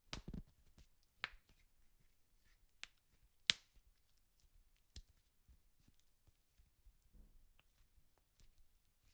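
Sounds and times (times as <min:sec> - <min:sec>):
knuckle crack: 0:00.1 - 0:01.6.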